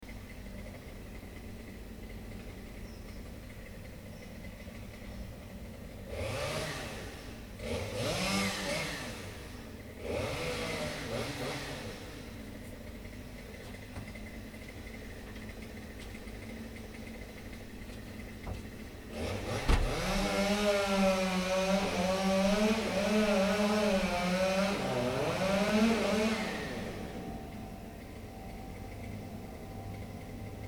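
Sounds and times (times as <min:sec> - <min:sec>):
chainsaw: 0:06.0 - 0:12.4, 0:19.1 - 0:27.3.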